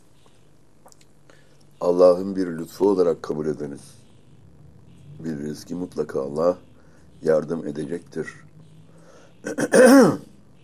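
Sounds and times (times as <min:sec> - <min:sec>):
speech: 0:01.8 - 0:04.0, 0:05.2 - 0:08.4, 0:09.4 - 0:10.3
person clearing throat with gravelly rasp: 0:09.4 - 0:10.3
person coughing: 0:09.4 - 0:10.3.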